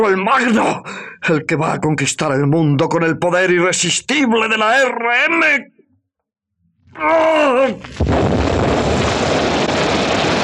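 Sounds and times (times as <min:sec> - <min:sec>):
speech: 0:00.0 - 0:05.8, 0:06.9 - 0:09.2
drawn-out groaning cry: 0:06.9 - 0:07.9
loud explosion: 0:07.8 - 0:10.4.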